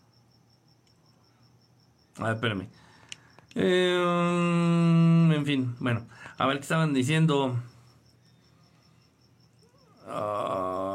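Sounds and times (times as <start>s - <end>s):
crickets chirping: 0.0s - 10.9s
faint low hum: 0.0s - 10.9s
speech: 2.2s - 2.9s, 3.6s - 7.7s.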